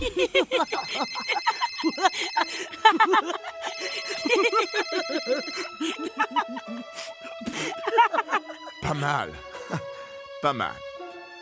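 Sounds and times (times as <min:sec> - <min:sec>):
mobile phone ringtone playing electronic tones: 0:00.0 - 0:06.8
people giggling and laughing: 0:00.0 - 0:10.1
speech: 0:10.4 - 0:10.9.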